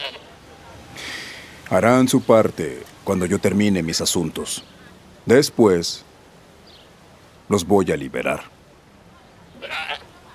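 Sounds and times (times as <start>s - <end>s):
goat bleating while being squeezed: 0.0s - 0.3s, 9.6s - 10.1s
speech: 1.7s - 6.1s, 7.5s - 8.6s.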